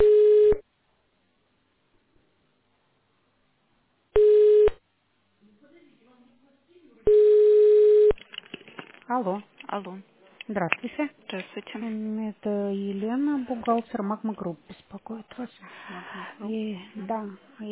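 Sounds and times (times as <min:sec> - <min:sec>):
telephone tones while a call is transferred: 0:00.0 - 0:00.6, 0:04.2 - 0:04.8, 0:07.1 - 0:08.2
speech: 0:09.1 - 0:17.7.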